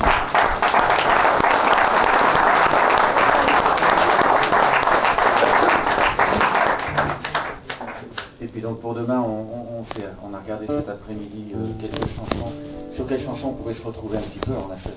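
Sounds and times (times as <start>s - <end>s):
audience applauding a performer: 0.0s - 8.3s
speech: 10.4s - 14.9s.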